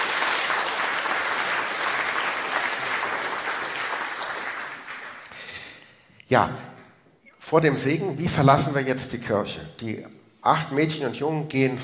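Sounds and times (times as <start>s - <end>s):
applause from a sizable gathering in a reverberant church: 0.0s - 5.4s
speech: 6.3s - 6.7s, 7.5s - 11.8s.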